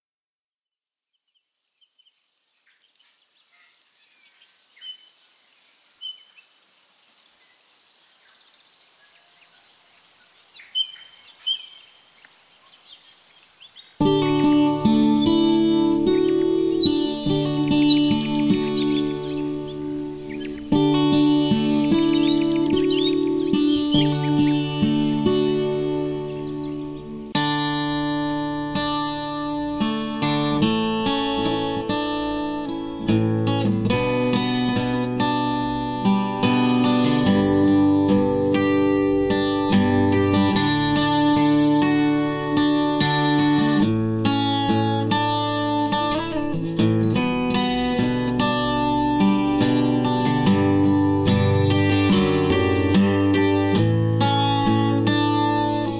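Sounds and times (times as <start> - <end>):
ambient acoustic guitar: 14.0 - 55.9.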